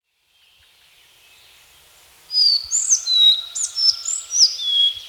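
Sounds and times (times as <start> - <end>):
collared flycatcher singing thin high whistled notes: 2.4 - 5.0.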